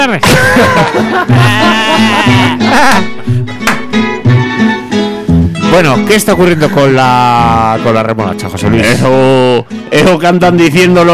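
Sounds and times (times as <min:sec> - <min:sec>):
speech: 0:00.0 - 0:03.6, 0:05.8 - 0:11.1
rhythmic musical backing: 0:00.1 - 0:11.1
laughter: 0:00.2 - 0:03.2
goat bleating in long quavering cries: 0:01.3 - 0:03.1.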